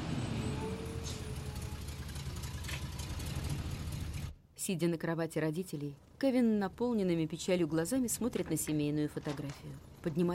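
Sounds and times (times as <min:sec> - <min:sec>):
rental truck engine idling: 0:00.8 - 0:04.4
speech: 0:04.6 - 0:10.3.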